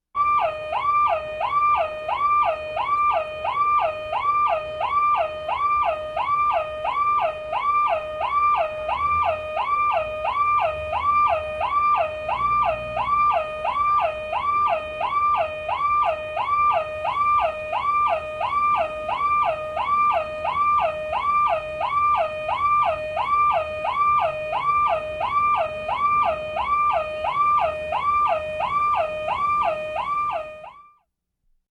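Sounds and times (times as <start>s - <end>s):
domestic car alarm: 0.2s - 31.0s.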